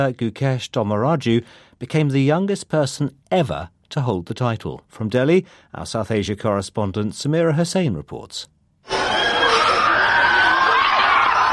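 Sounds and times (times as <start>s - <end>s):
speech: 0.0s - 9.3s
crowd of excited fans screaming and cheering at an airport: 8.9s - 11.5s.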